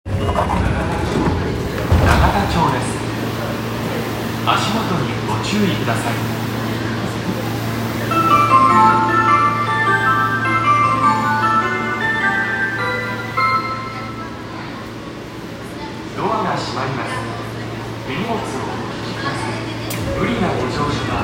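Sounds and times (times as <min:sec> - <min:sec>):
train sounds at Nagatacho on the Yurakucho Line: 0:00.0 - 0:21.2.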